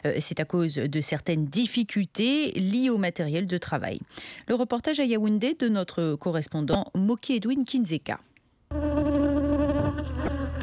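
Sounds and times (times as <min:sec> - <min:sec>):
speech: 0:00.0 - 0:08.3
honeybee swarms of a honey producer droning in Bitom village Cameroon: 0:08.7 - 0:10.6.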